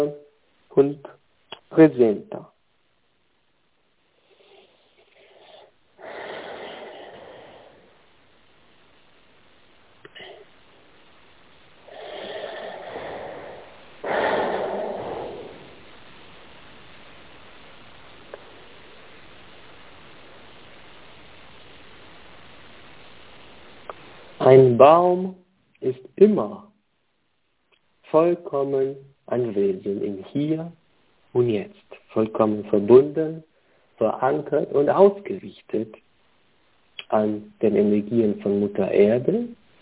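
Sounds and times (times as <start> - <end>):
speech: 0.0 - 0.2, 0.8 - 1.1, 1.7 - 2.5, 24.8 - 26.6, 28.1 - 36.0, 37.1 - 39.6
slow deep breathing: 4.2 - 8.1, 11.8 - 15.9.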